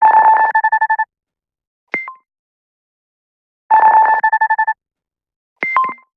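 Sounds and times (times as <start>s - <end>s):
phone ringtone: 0.0s - 1.1s, 3.7s - 4.8s.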